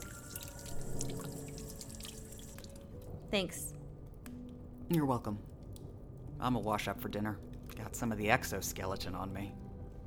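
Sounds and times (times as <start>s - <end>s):
water pouring into a glass: 0.0s - 3.0s
speech: 3.3s - 3.7s, 4.9s - 5.5s, 6.4s - 9.6s.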